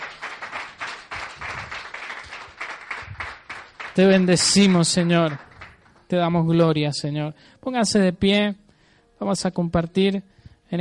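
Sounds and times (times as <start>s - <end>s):
audience applauding: 0.0s - 6.1s
speech: 4.0s - 5.5s, 6.1s - 8.6s, 9.2s - 10.7s.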